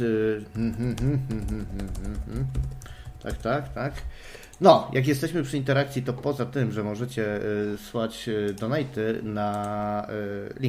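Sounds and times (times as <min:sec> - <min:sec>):
speech: 0:00.0 - 0:10.6
typing on a computer keyboard: 0:00.6 - 0:04.7.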